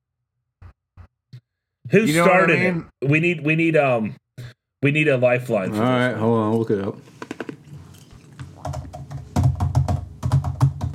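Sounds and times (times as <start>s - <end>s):
speech: 1.9s - 4.2s, 4.8s - 7.2s
typing on a computer keyboard: 8.6s - 10.9s.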